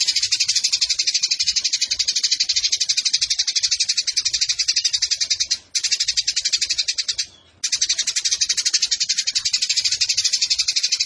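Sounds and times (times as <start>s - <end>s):
Eurasian tree sparrow chattering high sharp chirps: 0.0s - 11.0s.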